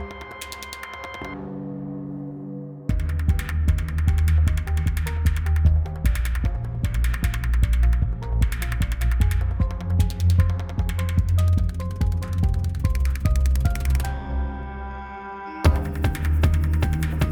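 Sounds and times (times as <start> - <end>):
fast kalimba playing: 2.9 - 14.2, 15.7 - 17.3.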